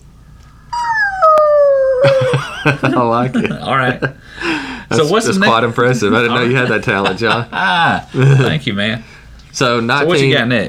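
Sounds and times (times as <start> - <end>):
person imitating a whale call: 0.7 - 2.4
laughter: 2.0 - 4.2, 6.2 - 8.0
speech: 2.0 - 10.6.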